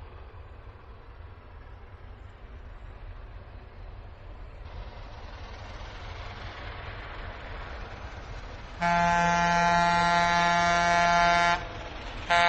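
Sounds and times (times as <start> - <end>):
train rumbling: 0.0 - 12.4
loud bright train horn blasting: 8.8 - 12.4.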